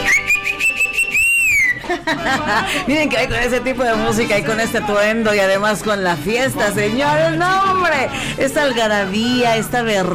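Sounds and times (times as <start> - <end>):
person whistling a tune: 0.0 - 2.0
laughter: 1.5 - 4.8
speech: 2.1 - 10.1.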